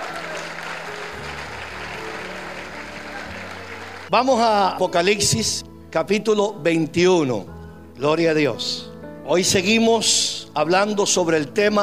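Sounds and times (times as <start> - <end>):
audience applauding: 0.0 - 4.1
speech: 4.1 - 11.8.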